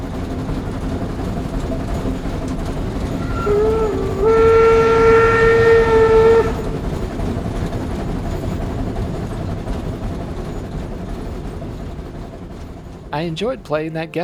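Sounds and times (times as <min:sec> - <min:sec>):
old steam engine train rumbling along: 0:00.0 - 0:14.2
rolling rail noise of old steam engine train: 0:00.0 - 0:14.2
old steam engine train whistle: 0:00.8 - 0:07.4
speech: 0:13.2 - 0:14.2.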